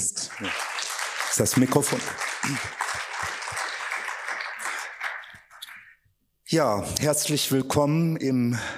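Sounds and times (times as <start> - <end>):
audience applause: 0.0 - 6.0
speech: 0.4 - 0.7, 1.4 - 3.1, 6.5 - 8.7.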